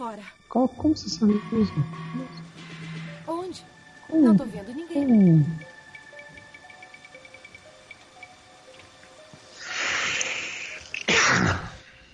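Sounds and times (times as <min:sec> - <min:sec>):
speech: 0:00.0 - 0:02.4, 0:03.5 - 0:05.7
loud sneeze: 0:11.1 - 0:11.8.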